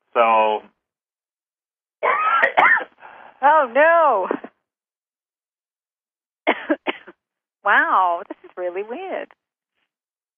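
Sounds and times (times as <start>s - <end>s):
speech: 0.2s - 0.7s, 3.4s - 4.4s, 7.6s - 9.4s
person coughing: 2.0s - 3.0s, 6.5s - 7.1s.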